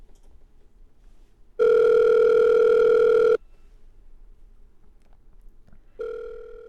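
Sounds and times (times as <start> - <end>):
phone ringback tone while calling a missing mobile phone: 1.6 - 3.4, 6.0 - 6.6.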